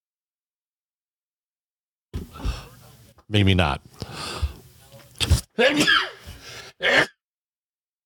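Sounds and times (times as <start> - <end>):
speech: 3.3 - 4.4, 5.2 - 6.2
sneeze: 5.2 - 6.2, 6.8 - 7.2.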